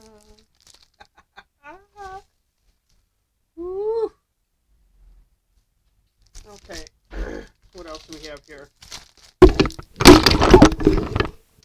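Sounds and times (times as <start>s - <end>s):
speech: 8.1s - 8.9s
objects being knocked over: 9.0s - 11.6s.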